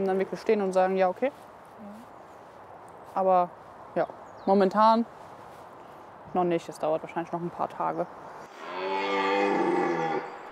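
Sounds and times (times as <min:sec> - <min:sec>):
speech: 0:00.0 - 0:02.0, 0:03.2 - 0:05.2, 0:06.3 - 0:08.2
red deer stag roaring during the rut in a wildlife park: 0:08.5 - 0:10.4.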